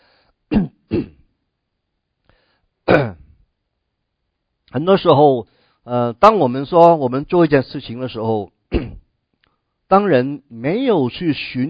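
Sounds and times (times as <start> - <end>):
person coughing with a rough throat-clearing rasp: 0.5 - 1.3, 2.9 - 3.4, 8.7 - 9.0
speech: 4.8 - 8.6, 9.9 - 11.6.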